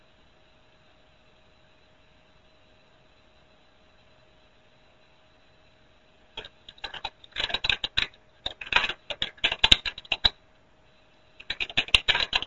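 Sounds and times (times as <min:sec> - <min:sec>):
keyboard typing: 0:06.4 - 0:10.4, 0:11.4 - 0:12.4.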